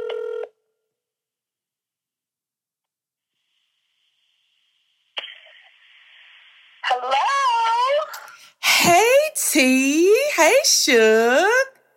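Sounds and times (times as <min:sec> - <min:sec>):
phone ringback tone heard from the caller's end: 0:00.0 - 0:00.5
speech: 0:07.0 - 0:07.5, 0:08.1 - 0:11.6.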